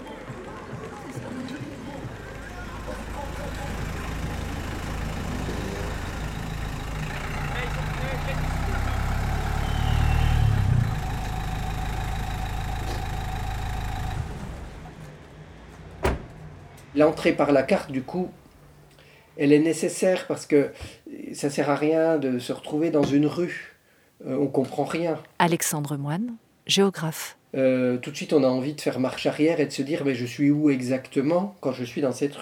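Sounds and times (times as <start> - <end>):
faint murmur of street life: 0.0 - 13.2, 14.6 - 19.4
bus engines rumbling crossing an open four-sided city square: 0.0 - 19.4
speech: 17.0 - 18.4, 19.4 - 32.3.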